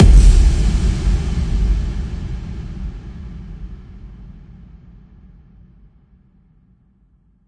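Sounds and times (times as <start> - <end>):
huge speaker exploding impact kick: 0.0 - 4.8.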